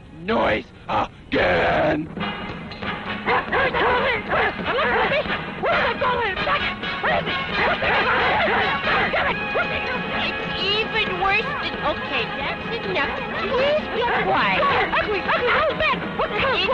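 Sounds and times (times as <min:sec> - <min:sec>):
speech: 0:00.2 - 0:02.4, 0:03.3 - 0:06.7, 0:11.3 - 0:16.7
dog barking: 0:03.2 - 0:10.2, 0:13.9 - 0:15.7.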